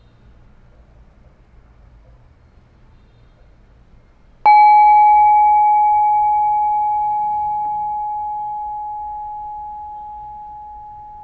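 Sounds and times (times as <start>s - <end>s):
meditation bell ringing with a pure steady tone: 4.5s - 11.2s.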